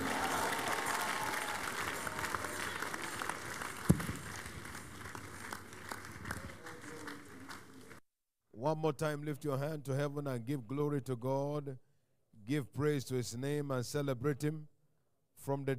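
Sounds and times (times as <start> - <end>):
crowd applauding: 0.0 - 8.0
speech: 8.7 - 11.9, 12.5 - 14.7, 15.4 - 15.7.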